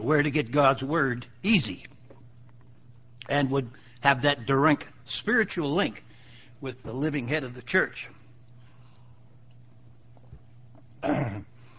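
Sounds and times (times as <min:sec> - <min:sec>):
speech: 0:00.0 - 0:01.9, 0:03.3 - 0:08.2, 0:11.0 - 0:11.5
quiet hum: 0:00.0 - 0:11.7
rough throat clearing: 0:11.0 - 0:11.6
short cough: 0:11.0 - 0:11.6.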